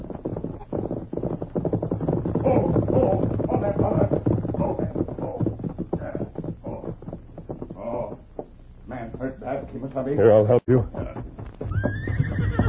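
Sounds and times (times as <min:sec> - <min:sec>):
horse with rider galloping fast along a trail: 0:00.0 - 0:12.6
speech: 0:09.8 - 0:11.0
horse whinnying loudly with a rising wavering cry: 0:11.6 - 0:12.6.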